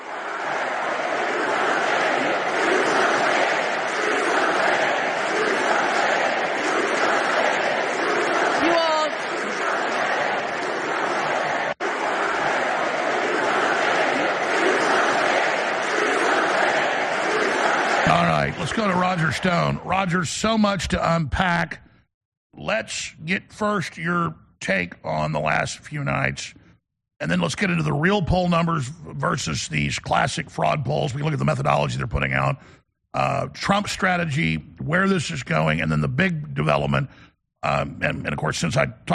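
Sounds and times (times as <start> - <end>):
large crowd clapping and cheering: 0.0 - 20.2
speech: 19.2 - 21.8, 22.6 - 26.6, 27.2 - 39.1.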